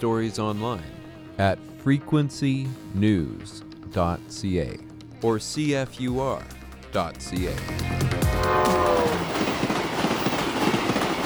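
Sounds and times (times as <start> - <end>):
speech: 0.0 - 8.7
rail cars rumbling and clacking past: 7.5 - 11.2
train horn: 8.2 - 9.8.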